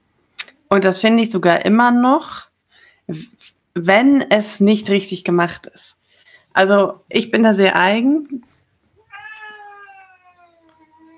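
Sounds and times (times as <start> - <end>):
speech: 0.7 - 2.5, 3.1 - 6.0, 6.6 - 8.5
cat meowing crying for food: 9.0 - 11.1.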